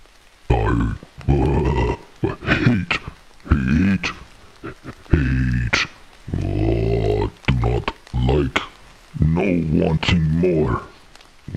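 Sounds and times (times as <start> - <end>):
voice imitating grunting of a big white goat: 0.5 - 11.5
speech: 10.0 - 10.9.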